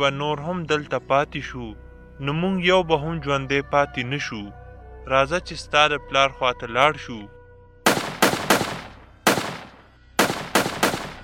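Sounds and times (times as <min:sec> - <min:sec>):
speech: 0:00.0 - 0:07.4
gunshots with decay: 0:07.9 - 0:11.2.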